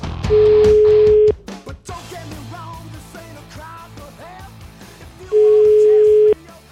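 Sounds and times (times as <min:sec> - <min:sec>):
ringback tone of an outgoing telephone call: 0:00.3 - 0:01.3, 0:05.3 - 0:06.4.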